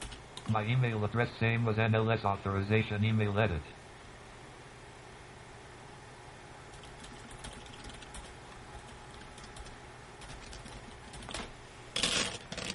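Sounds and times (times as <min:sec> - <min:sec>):
steady hum: 0:00.0 - 0:12.7
speech: 0:00.5 - 0:03.8
typing on a computer keyboard: 0:06.8 - 0:08.4, 0:09.1 - 0:12.7.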